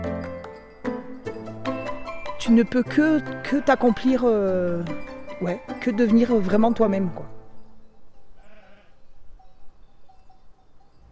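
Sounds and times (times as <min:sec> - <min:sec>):
steady outdoor noise: 0:00.0 - 0:11.1
speech: 0:02.4 - 0:07.3
ewes bleating in a penned flock: 0:02.8 - 0:04.9, 0:08.4 - 0:09.1.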